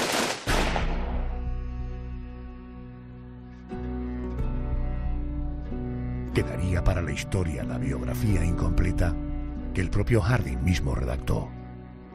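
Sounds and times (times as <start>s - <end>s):
gunshot-like bangs: 0.0s - 1.3s
sustained droning musical tone: 1.2s - 12.1s
speech: 6.4s - 11.6s.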